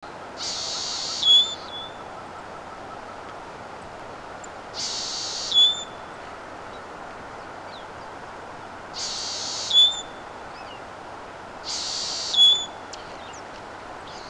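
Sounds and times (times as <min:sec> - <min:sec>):
Mourning Sierra-Finch Phrygilius fruticeti singing: 0:00.4 - 0:02.2, 0:04.4 - 0:06.1, 0:09.0 - 0:10.8, 0:11.7 - 0:14.2.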